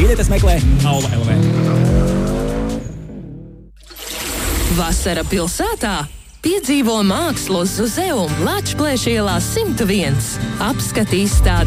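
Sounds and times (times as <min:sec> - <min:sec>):
autocross race car engine roar: 0:00.0 - 0:03.6
speech: 0:00.1 - 0:01.9, 0:04.7 - 0:11.6.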